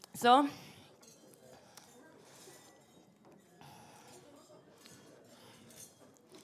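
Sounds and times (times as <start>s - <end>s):
speech: 0.2s - 0.7s
glasses clinking in a toast: 1.0s - 1.4s, 1.9s - 6.3s.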